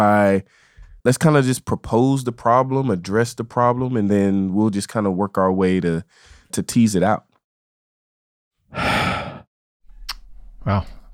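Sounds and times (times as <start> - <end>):
speech: 0.0 - 7.3, 10.6 - 11.0
deep breath exhale: 8.7 - 9.5.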